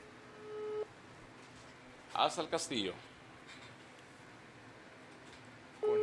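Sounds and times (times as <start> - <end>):
WhatsApp outgoing call ringing tone: 0.0 - 0.9, 5.8 - 6.0
speech: 2.2 - 3.1.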